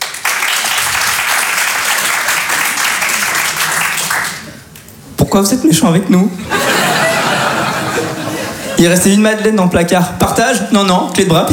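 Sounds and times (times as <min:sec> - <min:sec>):
audience applause answering a performer's question on stage: 0:00.0 - 0:04.6
speech: 0:05.3 - 0:06.6, 0:08.8 - 0:11.5
laughter: 0:06.4 - 0:08.8.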